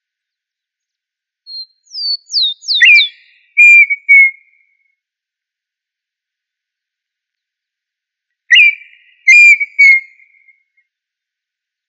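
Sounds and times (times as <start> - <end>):
tinamou whistling: 1.5 - 4.3, 8.5 - 10.1.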